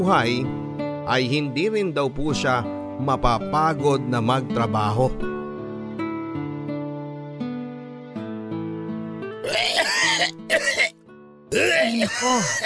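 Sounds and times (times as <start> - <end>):
speech: 0.0 - 5.3, 11.6 - 12.6
soft sustained music: 0.0 - 12.6
harsh raspy coughing: 9.4 - 10.9, 11.5 - 12.6.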